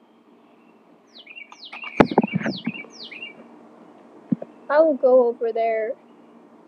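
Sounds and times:
bird chirping in descending sweeping tweets: 0.0 - 4.9, 6.0 - 6.5
low thumps: 1.8 - 2.9, 4.3 - 4.5
speech: 4.7 - 6.0.

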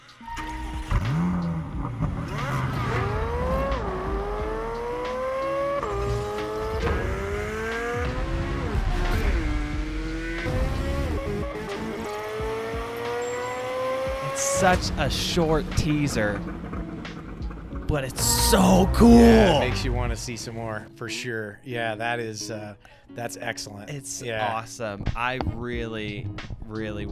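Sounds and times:
flat-plane crank V8 engine revving high through gear shifts: 0.6 - 20.0
speech: 14.6 - 16.7, 17.9 - 27.1.

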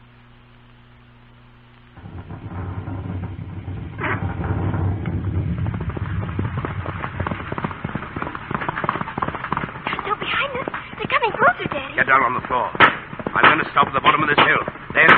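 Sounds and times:
horse hooves of a horse-drawn carriage clattering: 2.0 - 15.1
horse-drawn carriage wheels rattling past: 7.2 - 15.1
speech: 12.1 - 12.8, 13.4 - 15.1.

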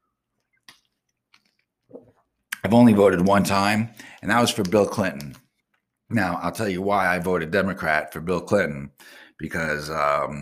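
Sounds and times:
person sipping water: 0.4 - 2.6
speech: 2.6 - 5.4, 6.1 - 10.4.

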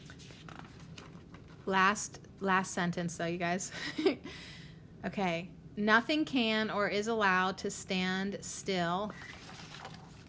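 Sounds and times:
book page being turned: 0.0 - 1.6, 9.2 - 10.2
speech: 1.6 - 9.4.

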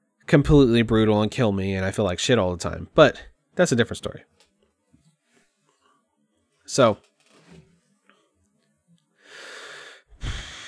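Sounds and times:
speech: 0.3 - 4.4, 6.7 - 7.1
heavy breathing into a microphone: 9.2 - 10.6.

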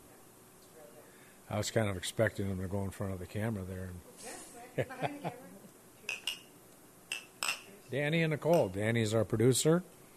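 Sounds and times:
speech: 1.5 - 5.6, 7.9 - 10.0
glasses of whisky clinking together in a toast: 6.1 - 6.5, 7.1 - 7.7.

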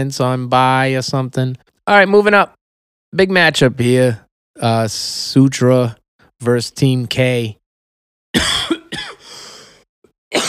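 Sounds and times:
speech: 0.0 - 7.6, 8.4 - 8.6
person coughing: 8.4 - 9.3.

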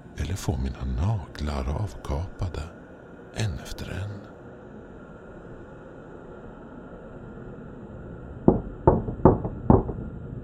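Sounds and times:
speech: 0.4 - 2.8, 3.4 - 4.3
firm knocking on a wooden front door: 8.5 - 10.0.

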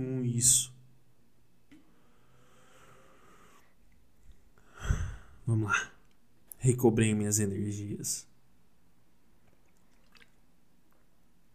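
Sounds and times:
speech: 0.0 - 0.7, 5.5 - 5.9, 6.6 - 8.3
low steady hum: 0.0 - 11.5
sipping water: 9.4 - 11.5.

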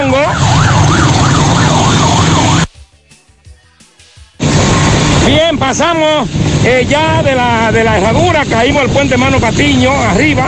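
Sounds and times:
ambulance siren wailing: 0.0 - 2.7
heavy road rumble: 0.0 - 2.7, 4.4 - 10.4
speech: 5.6 - 10.4.

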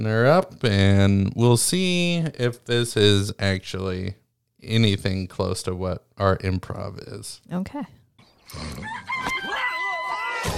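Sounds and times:
speech: 0.0 - 9.4
rooster crowing in an animated film trailer: 8.7 - 10.5.

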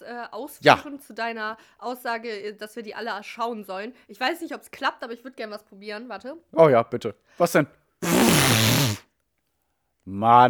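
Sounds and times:
speech: 0.2 - 8.7, 10.1 - 10.4
voice imitating a fart with a buzzing raspberry: 8.0 - 9.0.

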